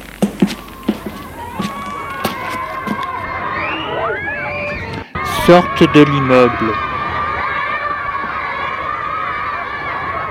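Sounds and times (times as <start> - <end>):
dense crowd of young people shouting and clamoring: 0.8 - 10.2
speech: 5.5 - 6.9.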